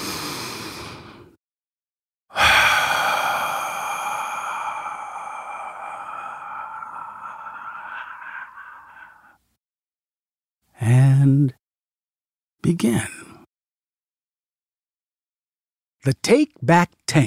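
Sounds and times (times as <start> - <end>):
deep breath: 0.0 - 1.4, 2.3 - 9.6
speech: 12.7 - 13.2, 16.0 - 17.2.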